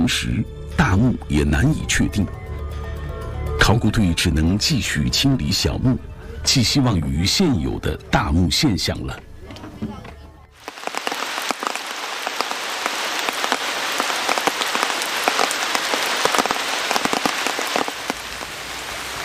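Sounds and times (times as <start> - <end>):
speech: 0.1 - 2.8, 3.7 - 10.0
rain from Typhoon Khanun falling on the ground at an archaeological dig: 10.6 - 19.2.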